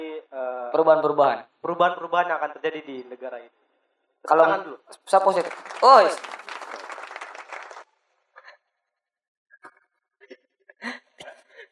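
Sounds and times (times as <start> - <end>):
speech: 0.7 - 3.6, 4.2 - 6.3
loud crowd applause sound effect: 4.9 - 7.9.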